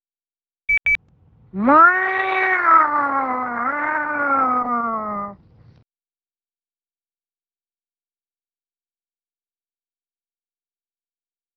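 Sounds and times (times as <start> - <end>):
short electronic beeps: 0.7 - 1.0
cat meowing: 1.6 - 5.4.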